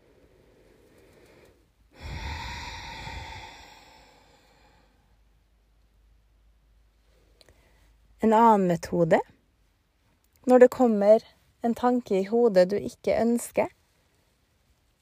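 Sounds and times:
deep audible breath in and out: 0.0 - 5.6
speech: 8.2 - 9.3, 10.4 - 13.8.

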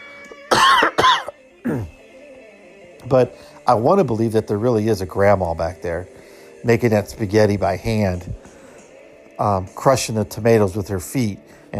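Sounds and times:
person coughing: 0.5 - 2.0
speech: 3.1 - 8.5, 9.4 - 11.7.

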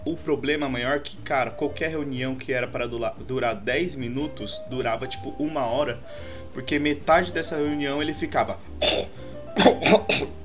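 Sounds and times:
speech: 0.1 - 10.4
person imitating a man coughing and spitting: 8.8 - 10.4.

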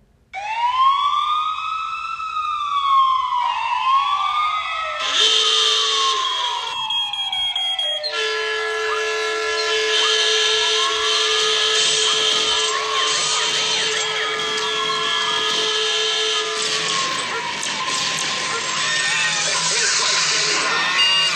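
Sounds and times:
police car siren wailing and warbling: 0.4 - 21.3.

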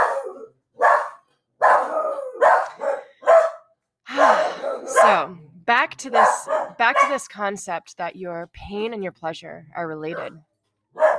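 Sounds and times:
dogs barking and yelping in the background: 0.0 - 5.3, 6.0 - 7.3, 10.0 - 11.1
speech: 5.0 - 10.5.

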